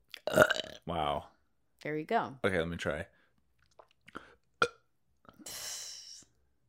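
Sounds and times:
throaty burps: 0.1 - 0.9, 4.1 - 4.9
speech: 0.9 - 3.2.

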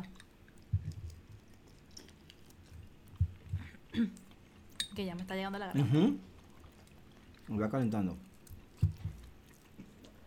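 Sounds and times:
fried food being chewed: 0.0 - 10.2
speech: 4.0 - 4.2, 5.0 - 6.3, 7.5 - 8.3.

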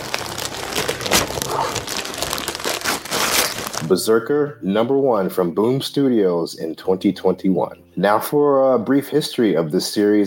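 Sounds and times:
gift wrap crinkling as a present is unwrapped from a stocking: 0.0 - 4.0
speech: 3.9 - 10.2.

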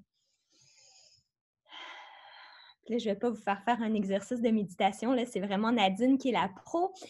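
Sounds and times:
person breathing deeply in a breathing exercise: 0.5 - 2.8
speech: 2.9 - 7.0.

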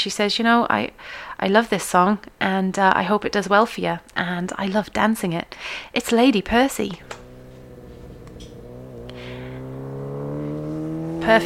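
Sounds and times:
speech: 0.0 - 7.2, 11.2 - 11.4
motorbike engine revving: 6.5 - 11.4.

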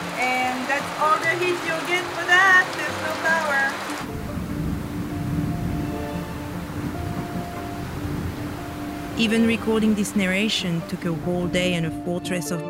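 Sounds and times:
heavy jungle rainstorm pouring: 0.0 - 11.9
speech: 1.0 - 3.4, 9.2 - 12.6
melodic tonal sound: 4.0 - 12.5.

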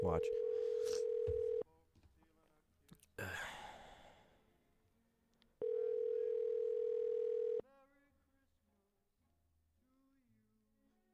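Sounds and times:
electronic phone call ringback tone: 0.0 - 1.6, 5.6 - 7.6
person sighing and breathing: 3.2 - 4.4.

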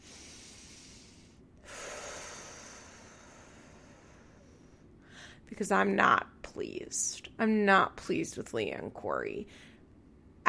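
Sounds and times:
slow deep meditative breathing: 0.0 - 5.5
speech: 5.5 - 9.7.

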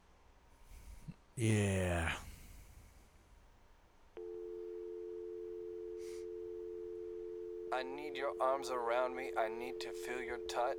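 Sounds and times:
speech: 1.4 - 2.2, 7.8 - 10.7
telephone dial tone: 4.2 - 10.7.

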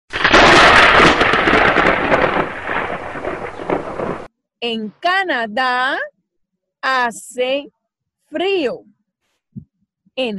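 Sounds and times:
loud rolling thunder: 0.1 - 4.3
steady hissing rain: 0.1 - 4.3
speech: 4.6 - 6.1, 6.8 - 8.9, 10.2 - 10.3.

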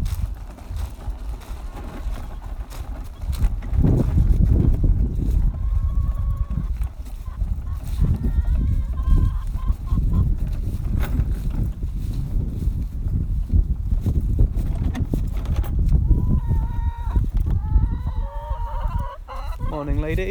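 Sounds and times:
steady low rumble of wind: 0.0 - 20.2
outdoor flock of chickens clucking and squawking: 0.1 - 11.5, 15.9 - 20.2
speech: 20.1 - 20.2.

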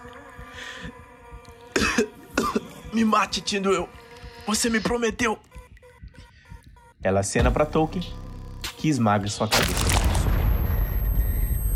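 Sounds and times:
speech: 3.0 - 5.5, 7.0 - 8.2, 8.8 - 9.9
heavy explosion echoing through a hall: 9.6 - 11.7.

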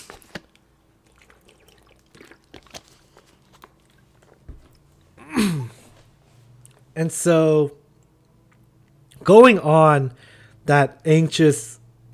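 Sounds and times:
person drinking water with small wet clicks and sips: 1.0 - 6.0
speech: 7.0 - 7.8, 9.3 - 11.8.

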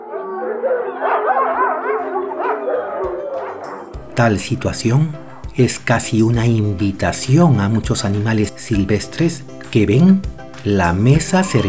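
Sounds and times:
several dogs barking and yelping herding sheep in the sierra: 0.0 - 4.2, 5.2 - 5.6, 11.4 - 11.6
speech: 4.2 - 11.6.

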